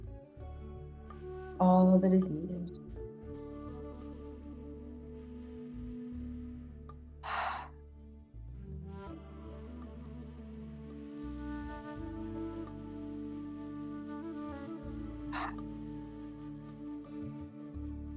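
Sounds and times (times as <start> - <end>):
steady low instrumental drone: 0.0 - 18.1
speech: 1.6 - 2.6
short breathy inhale during a slow deep-breathing exercise: 7.2 - 7.8.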